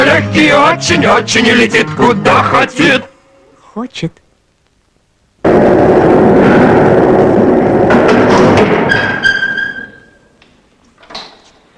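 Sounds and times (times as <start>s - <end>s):
speech: 0.2s - 3.1s, 3.8s - 4.2s
steady rumbling rush: 5.4s - 9.0s
metallic door slamming: 7.7s - 10.2s.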